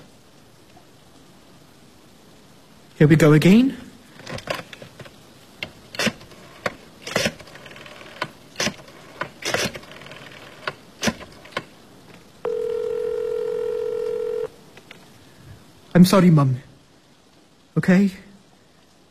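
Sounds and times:
speech: 3.0s - 3.9s, 16.0s - 16.7s, 17.8s - 18.3s
steady buzzing telephone tone: 12.4s - 14.5s.

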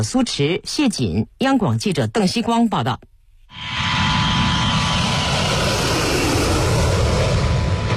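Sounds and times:
speech: 0.0s - 4.0s
jet engine roar of an H-6K bomber taking off from an airfield: 3.5s - 7.9s.

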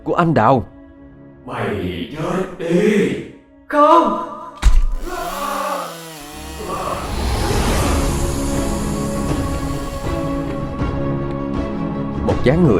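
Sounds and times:
speech: 0.0s - 0.7s, 1.5s - 4.3s, 12.3s - 12.7s
small saw cutting with buzzing motor drone: 4.9s - 11.2s.

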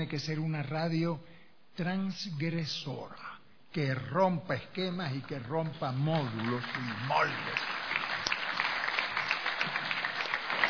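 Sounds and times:
speech: 0.0s - 7.8s
many hands clapping at the inauguration of a cultural center's radio station: 6.1s - 10.6s.

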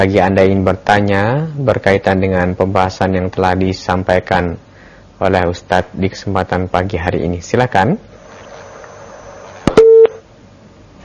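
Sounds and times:
speech: 0.0s - 8.1s
low steady telephone busy tone on a phone-in line: 9.7s - 10.2s.

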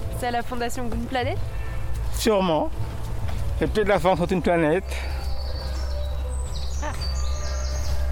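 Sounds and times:
birds singing: 0.0s - 8.1s
speech: 0.2s - 1.6s, 2.2s - 2.9s, 3.6s - 5.2s.

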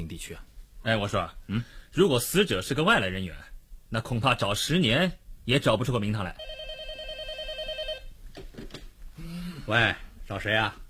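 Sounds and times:
speech: 0.0s - 6.6s, 9.7s - 10.8s
telephone ringing: 6.4s - 8.1s.

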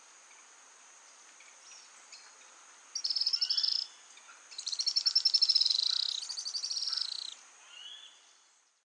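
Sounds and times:
steady background hiss: 0.0s - 8.8s
Araucaria tit-spinetail Leptasthenura setaria song trill: 3.0s - 3.9s, 4.6s - 7.4s.

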